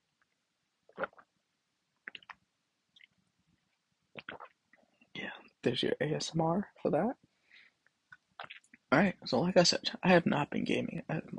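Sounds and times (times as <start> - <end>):
mouth clicks: 0.9 - 1.3, 2.0 - 2.4, 4.2 - 4.6, 8.1 - 8.8
person sipping and gulping water: 0.9 - 1.3, 2.0 - 2.4, 4.1 - 4.6, 8.4 - 8.8
speech: 5.6 - 7.2, 8.9 - 11.2.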